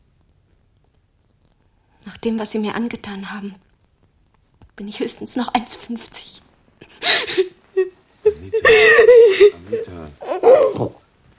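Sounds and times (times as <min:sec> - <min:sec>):
speech: 0:02.1 - 0:03.7, 0:04.8 - 0:07.5
woman crying: 0:06.9 - 0:10.9.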